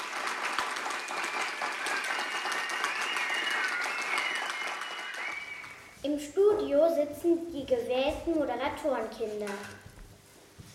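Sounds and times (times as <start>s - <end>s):
excited cheers from children: 0.0s - 5.9s
school class of children applauding in a basement radio studio: 0.0s - 6.0s
children whistling: 0.8s - 6.0s
speech: 6.0s - 9.8s.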